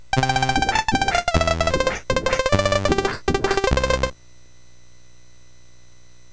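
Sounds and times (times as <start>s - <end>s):
MOS6581R4 SID chip music: 0.2s - 4.1s.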